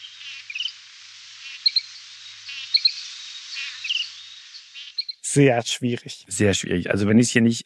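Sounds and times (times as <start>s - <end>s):
bird chirping and twittering: 0.0s - 5.3s
speech: 5.3s - 7.6s.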